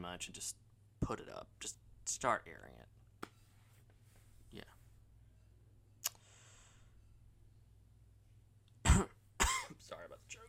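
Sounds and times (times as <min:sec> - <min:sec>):
speech: 0:00.0 - 0:03.0, 0:04.5 - 0:04.8, 0:09.0 - 0:09.2
person clearing throat while choking: 0:08.8 - 0:09.8
person coughing while choking: 0:08.8 - 0:09.8.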